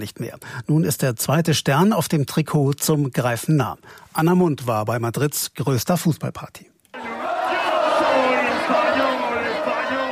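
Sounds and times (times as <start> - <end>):
speech: 0.0 - 7.1
football fans cheering and shouting at a public viewing in Madrid: 7.0 - 10.1.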